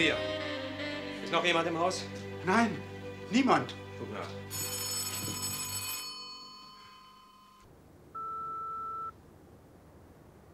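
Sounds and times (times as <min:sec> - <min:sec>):
speech: 0:00.0 - 0:00.3, 0:01.3 - 0:04.7
telephone ringing at night in a house: 0:04.5 - 0:09.1.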